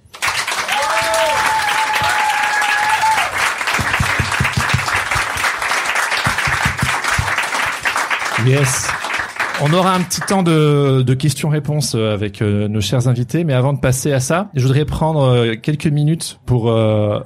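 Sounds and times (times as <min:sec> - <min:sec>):
audience applauding for event guests: 0:00.0 - 0:10.7
speech: 0:08.4 - 0:09.0, 0:09.6 - 0:17.2.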